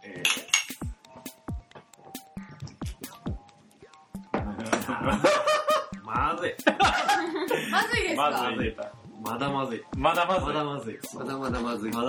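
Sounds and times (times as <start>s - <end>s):
glasses clinking together in a toast: 0.2s - 0.8s
laughter: 4.5s - 6.0s, 6.6s - 8.2s
speech: 5.0s - 5.6s, 6.3s - 12.0s.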